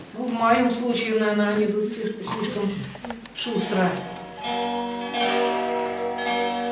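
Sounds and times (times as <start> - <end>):
speech: 0.4 - 5.5
church bell ringing: 3.6 - 6.7.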